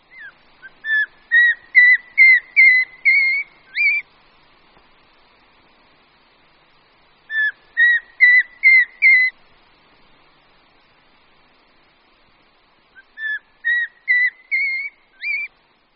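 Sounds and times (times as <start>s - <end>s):
Eurasian pygmy owl call of short whistled notes rising in pitch: 0.1s - 4.0s, 7.3s - 9.4s, 13.0s - 15.5s.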